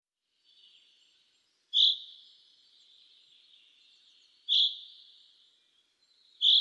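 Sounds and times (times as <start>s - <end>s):
common chaffinch calls, Fringilla coelebs: 1.7s - 2.2s, 4.5s - 5.2s, 6.4s - 6.5s.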